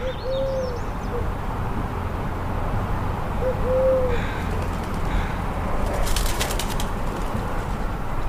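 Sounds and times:
collared dove cooing in Sitka Alaska: 0.0 - 1.3, 3.4 - 7.0
steady outdoor hiss: 0.0 - 8.2
brief rustling flutter: 4.4 - 8.0.

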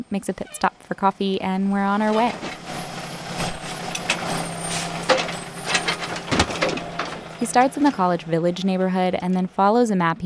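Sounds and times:
speech: 0.0 - 2.6, 7.4 - 10.2
garbage truck engine droning: 0.0 - 10.2
garbage truck air brakes hissing: 2.6 - 6.2.

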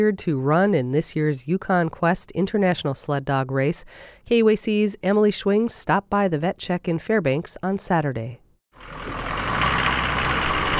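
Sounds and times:
speech: 0.0 - 9.3
truck engine rumbling as it pulls into a warehouse in South Fairbanks: 8.8 - 10.7.

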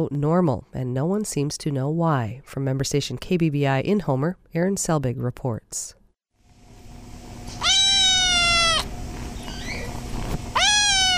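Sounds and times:
speech: 0.0 - 6.0
faint hum: 0.0 - 11.1
kittens meowing in a big glass box at an animal shelter: 7.6 - 9.9, 10.5 - 11.1.

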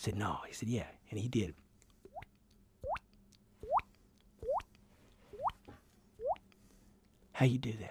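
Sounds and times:
speech: 0.0 - 1.6, 7.4 - 7.8
mouth imitation of underwater explosion bloop: 2.1 - 4.7, 6.2 - 6.5.

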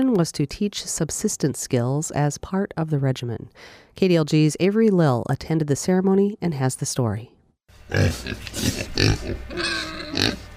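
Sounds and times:
speech: 0.0 - 10.5
pigs grunting and snorting in a farm pen: 7.8 - 10.5.

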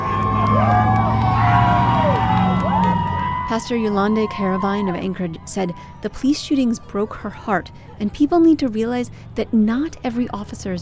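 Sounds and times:
dense crowd on sidewalks cheering and whooping: 0.0 - 6.7
speech: 3.6 - 10.8.

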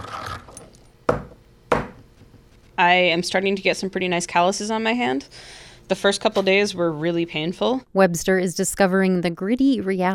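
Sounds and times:
pestle striking a mortar while grinding dried halibut tissue: 1.1 - 2.1
speech: 2.8 - 10.1.

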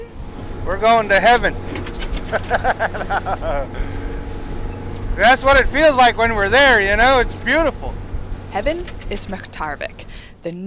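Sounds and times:
indistinct voices: 0.0 - 10.6
motorboat engine droning on a river: 0.0 - 10.6
speech: 0.7 - 1.7, 2.3 - 3.9, 5.2 - 10.6
laughter: 1.8 - 4.0.

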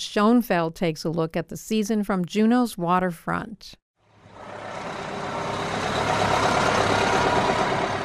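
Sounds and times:
speech: 0.0 - 3.8
heavy diesel bus engines idling at a cruise ship dock in Juneau Alaska: 4.1 - 8.0.

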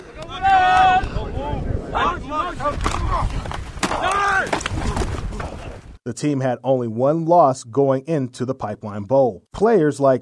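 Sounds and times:
voices calling and shouting during team football practice: 0.0 - 5.8
gusty wind buffeting across an open outdoor football field on a cloudy day: 0.0 - 6.0
speech: 6.1 - 10.1.

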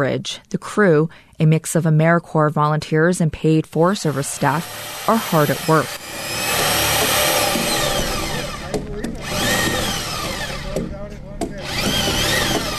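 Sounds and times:
speech: 0.0 - 6.4
power drill boring holes into logs: 4.0 - 12.7.

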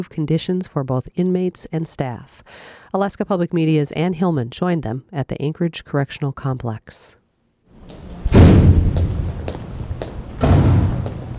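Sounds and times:
speech: 0.0 - 7.2
heavy metal door slamming shut at the Anchorage Correctional Complex in Alaska: 8.2 - 11.3.

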